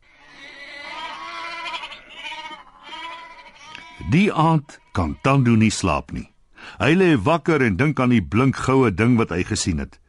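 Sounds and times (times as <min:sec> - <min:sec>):
goats bleating: 0:00.2 - 0:05.7
speech: 0:04.1 - 0:10.0.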